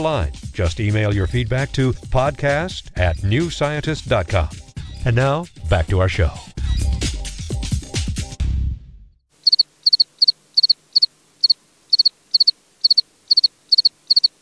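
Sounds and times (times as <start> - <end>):
speech: 0.0 - 6.5
music: 0.0 - 9.2
field cricket chirping: 9.4 - 14.4.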